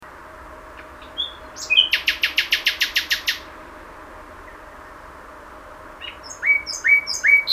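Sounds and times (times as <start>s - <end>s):
Common nightingale Luscinia megarhynchos singing thin whistles and loud repeated notes: 1.0s - 3.4s, 6.0s - 7.5s.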